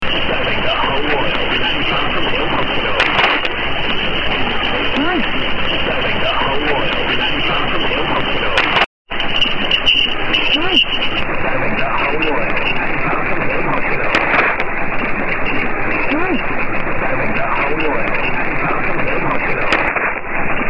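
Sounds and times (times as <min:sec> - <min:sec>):
unidentified mediumwave hospital radio station broadcast: 0:00.0 - 0:20.6.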